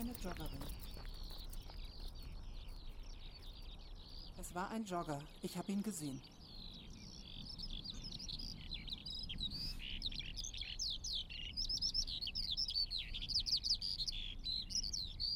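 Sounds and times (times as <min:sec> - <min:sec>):
speech: 0:00.0 - 0:01.3, 0:04.4 - 0:06.4
Eurasian skylarks singing over an open airfield: 0:00.0 - 0:15.3.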